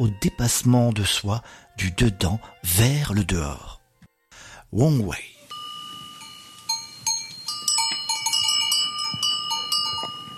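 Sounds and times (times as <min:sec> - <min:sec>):
speech: 0:00.0 - 0:03.8, 0:04.7 - 0:05.3
cow and sheep bells clanking and jingling in village lanes: 0:05.5 - 0:10.3.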